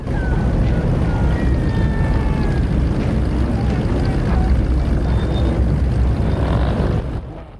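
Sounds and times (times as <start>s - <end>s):
faint shouted voices: 0.0s - 5.6s
car and motorbike engines running: 0.0s - 7.5s.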